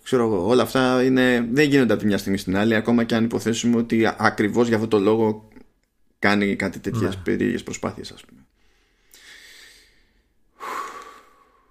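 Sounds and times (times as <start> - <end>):
speech: 0.1 - 5.5, 6.2 - 8.5
deep breath in: 8.6 - 11.6.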